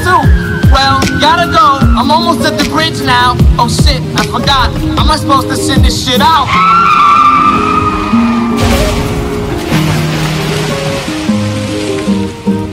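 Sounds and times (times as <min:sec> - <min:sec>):
rushing, churning water: 0:00.0 - 0:12.7
speech: 0:03.0 - 0:07.0
passenger car engine and tires squealing in a skid off a coastal road: 0:06.4 - 0:08.6
passenger car crashing onto the shore: 0:07.6 - 0:12.1
scattered debris sounds: 0:08.6 - 0:12.3.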